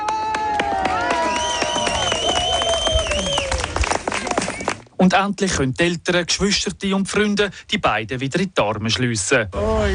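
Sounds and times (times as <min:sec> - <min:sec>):
crowd of friends and relatives cheering: 0:00.0 - 0:04.8
friends and relatives clapping: 0:00.0 - 0:04.9
whistles from friends and relatives: 0:01.1 - 0:03.8
speech: 0:05.0 - 0:09.9.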